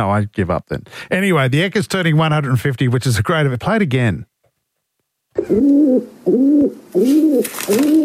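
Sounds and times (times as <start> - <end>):
speech: 0.0 - 4.3, 5.4 - 8.0
pigeon cooing: 5.4 - 8.0.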